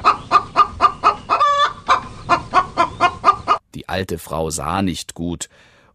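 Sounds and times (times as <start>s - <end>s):
hen clucking: 0.0s - 3.6s
speech: 4.0s - 5.7s.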